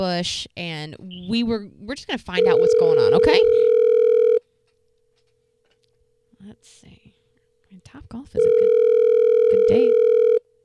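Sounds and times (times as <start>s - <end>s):
speech: 0.0s - 3.8s, 7.8s - 10.2s
buzzing telephone tone as a phone call is placed: 2.4s - 4.4s, 8.4s - 10.5s.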